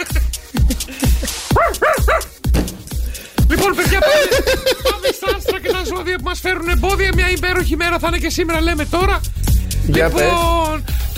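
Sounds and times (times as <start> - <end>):
laughter: 0.0 - 1.5, 3.5 - 6.5
dog barking: 1.5 - 2.4
speech: 6.0 - 10.7.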